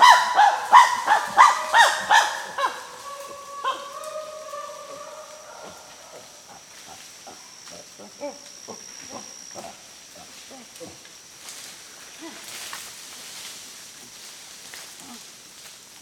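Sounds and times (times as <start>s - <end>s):
chimpanzee harsh barks in Gabon: 0.0s - 10.8s.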